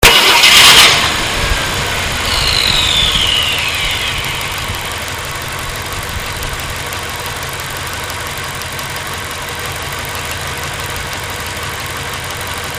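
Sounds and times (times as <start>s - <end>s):
1966 Ford Galaxie 500 XL car: 0.0s - 12.7s.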